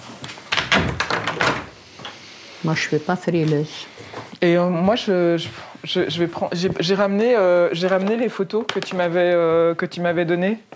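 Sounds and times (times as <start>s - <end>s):
door pushed shut with rattling knocks and a firm thud: 0.5s - 1.8s
speech: 2.6s - 10.7s.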